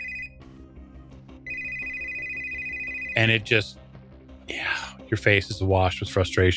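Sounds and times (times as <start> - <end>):
cell phone ringtone chirping with warbling electronic tone: 0.0 - 0.5, 1.4 - 3.7
speech: 3.2 - 3.8, 4.5 - 6.5.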